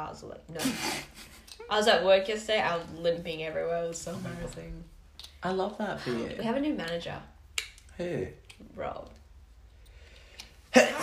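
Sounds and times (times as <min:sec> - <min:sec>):
speech: 0:00.0 - 0:07.3, 0:08.0 - 0:09.2
person breathing: 0:09.8 - 0:10.6
person sneezing: 0:10.7 - 0:11.0.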